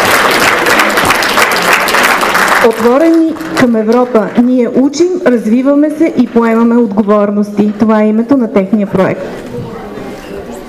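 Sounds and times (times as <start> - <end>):
audience applause at an award ceremony: 0.0 - 3.7
speech: 2.6 - 9.6.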